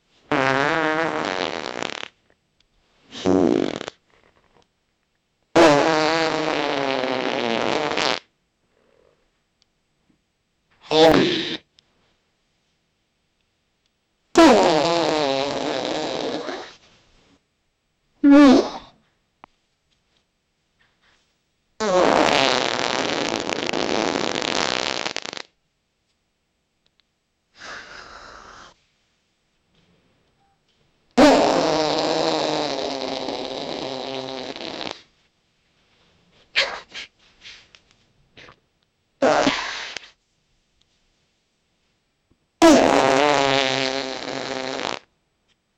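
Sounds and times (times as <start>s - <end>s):
person farting on command: 0.3s - 2.2s, 3.1s - 4.6s, 5.6s - 8.3s, 10.8s - 11.7s, 14.4s - 16.8s, 18.2s - 19.0s, 21.8s - 25.6s, 31.2s - 35.1s, 39.2s - 40.2s, 42.6s - 45.1s.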